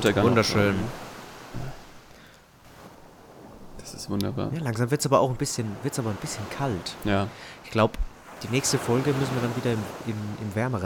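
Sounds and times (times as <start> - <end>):
speech: 0.0 - 1.1, 4.1 - 10.8
faint breeze: 0.0 - 10.8
surf rolling over a beach at sunset: 0.0 - 10.8.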